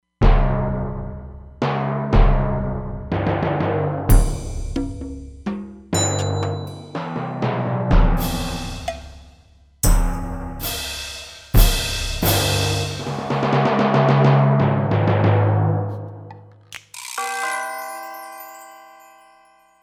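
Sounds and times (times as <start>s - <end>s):
orchestral percussion kit on a Roland Fantom XR: 0.2s - 15.8s.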